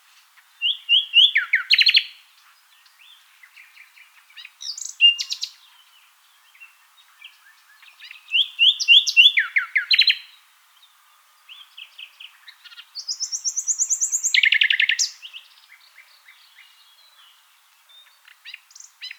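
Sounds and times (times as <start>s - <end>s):
common nightingale Luscinia megarhynchos singing: 0.4s - 19.1s.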